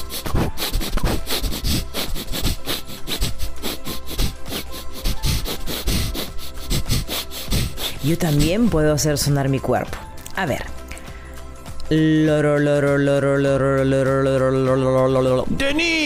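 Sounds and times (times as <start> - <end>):
loud sniffs: 0.0 - 8.8
speech: 8.0 - 10.7, 11.9 - 16.0.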